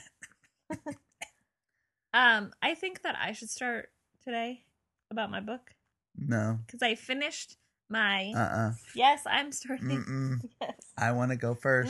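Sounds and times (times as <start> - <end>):
speech: 2.2 - 11.8
person clearing throat: 9.8 - 10.4.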